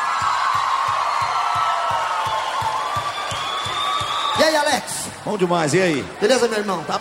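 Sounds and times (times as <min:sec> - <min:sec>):
large crowd cheering and applauding: 0:00.0 - 0:07.0
whoops and whistles from a crowd: 0:01.5 - 0:04.6
speech: 0:04.4 - 0:07.0.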